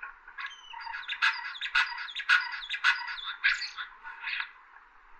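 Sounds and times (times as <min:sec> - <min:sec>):
common starling harsh rasping squawks: 0:00.4 - 0:04.4.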